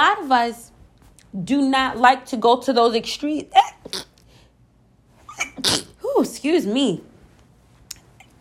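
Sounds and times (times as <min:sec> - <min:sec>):
speech: 0:00.2 - 0:00.7, 0:01.3 - 0:04.0, 0:05.6 - 0:07.1
person sneezing: 0:05.3 - 0:06.0.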